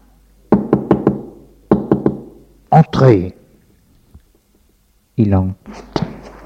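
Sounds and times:
firm knocking on a door: 0:00.5 - 0:02.4
speech: 0:02.7 - 0:03.4, 0:05.2 - 0:05.9.

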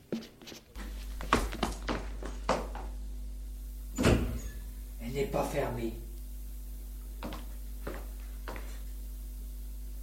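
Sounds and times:
low steady hum: 0:00.7 - 0:10.0
door thump: 0:04.0 - 0:04.4
hotel attic door creaking and clunking open: 0:04.0 - 0:04.7
speech: 0:05.2 - 0:06.1.

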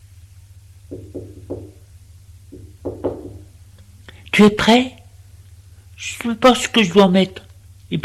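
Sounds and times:
low steady hum: 0:00.0 - 0:08.0
knocking on a door: 0:00.9 - 0:01.8, 0:02.5 - 0:03.5
speech: 0:04.4 - 0:05.0, 0:06.0 - 0:08.0.

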